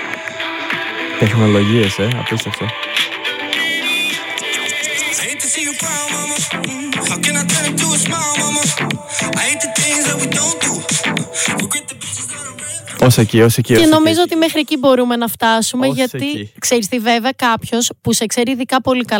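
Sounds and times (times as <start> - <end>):
song with sung melody played from a mobile phone speaker: 0.0 - 13.1, 13.7 - 14.7
speech: 1.2 - 3.1, 13.0 - 19.1.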